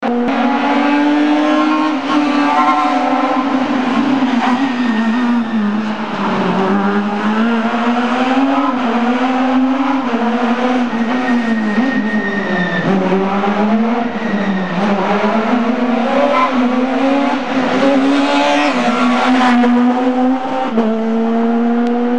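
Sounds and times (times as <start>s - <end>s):
Fiat Punto S2000 rally car engine: 0.0s - 22.1s.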